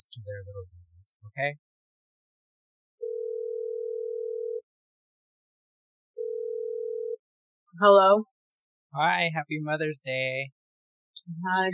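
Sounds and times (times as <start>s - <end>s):
speech: 0.0s - 1.7s, 7.8s - 8.3s, 8.9s - 10.6s, 11.2s - 11.7s
telephone ringing tone while placing a call: 3.0s - 4.6s, 6.2s - 7.2s.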